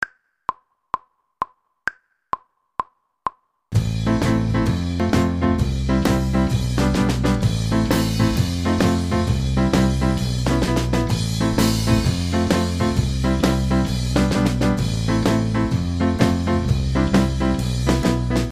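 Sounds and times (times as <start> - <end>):
keyboard section music: 3.8 - 18.5.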